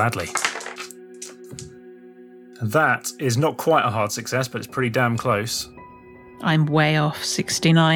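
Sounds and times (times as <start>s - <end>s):
speech: 0.0s - 0.5s, 2.6s - 5.8s, 6.4s - 7.9s
dice clattering across a hard tabletop: 0.0s - 1.7s.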